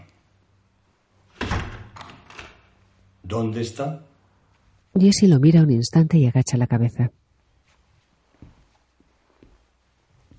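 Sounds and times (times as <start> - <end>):
door swinging shut with a solid thud: 1.3 - 2.8
speech: 3.3 - 4.1, 5.0 - 7.2.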